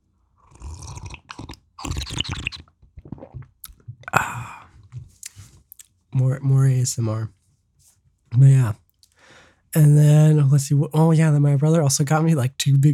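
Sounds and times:
person slurping hot tea: 0.4 - 4.7
soft mouth noises: 1.0 - 6.0
speech: 6.2 - 7.4, 8.4 - 8.8, 9.7 - 12.9.

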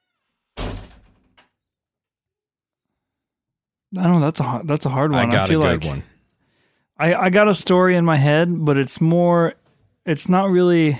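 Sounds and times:
door swinging shut and settling into the frame: 0.5 - 1.5
speech: 3.9 - 6.1, 7.0 - 10.9.

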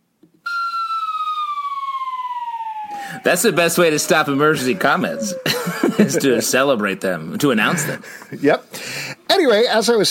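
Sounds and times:
siren wailing: 0.5 - 6.9
laughter: 3.2 - 8.4
speech: 3.2 - 8.8, 9.4 - 10.0.

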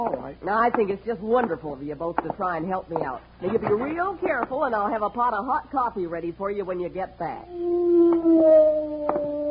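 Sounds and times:
speech: 0.0 - 9.4
wolf howling at night: 7.5 - 9.4.

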